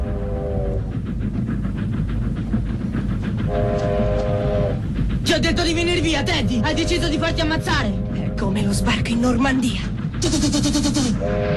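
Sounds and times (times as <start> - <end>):
train horn blaring: 0.0 - 0.8, 3.5 - 4.8, 6.6 - 8.9, 11.2 - 11.5
rhythmic rail clatter: 0.0 - 11.5
train thundering along the tracks: 0.0 - 11.5
speech: 5.4 - 11.5.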